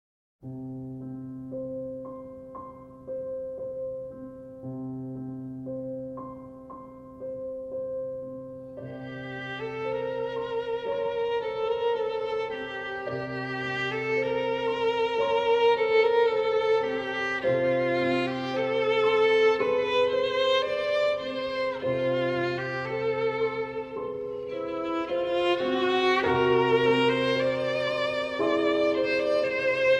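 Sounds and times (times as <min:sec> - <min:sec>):
piano playing a nocturne: 0:00.4 - 0:29.9
violin playing a nocturne: 0:08.7 - 0:29.9.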